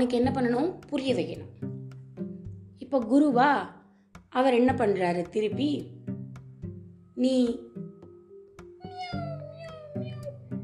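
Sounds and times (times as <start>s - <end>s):
speech: 0.0s - 1.8s, 2.9s - 6.0s, 7.2s - 7.7s
kitten meowing: 8.8s - 10.6s.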